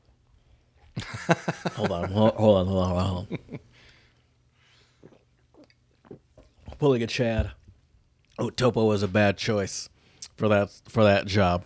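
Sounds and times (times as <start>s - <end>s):
laughter: 1.0s - 3.7s
person chewing food: 1.0s - 6.8s
speech: 1.3s - 3.6s, 6.8s - 7.6s, 8.4s - 11.6s.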